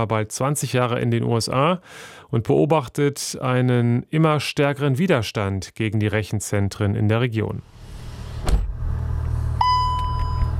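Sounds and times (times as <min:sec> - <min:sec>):
speech: 0:00.0 - 0:07.8
low road rumble inside a car driving: 0:07.6 - 0:10.5
electronic chime inside a car: 0:09.6 - 0:10.5.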